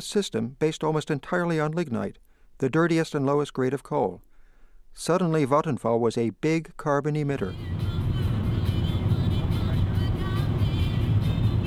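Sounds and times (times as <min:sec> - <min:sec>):
speech: 0:00.0 - 0:04.3, 0:05.0 - 0:08.0
car driving on the Autobahn south from Berlin: 0:07.5 - 0:11.6.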